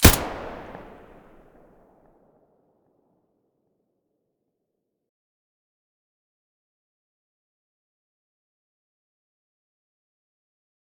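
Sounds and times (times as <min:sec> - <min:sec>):
airsoft pistol shot at the muzzle in mono: 0:00.0 - 0:01.4.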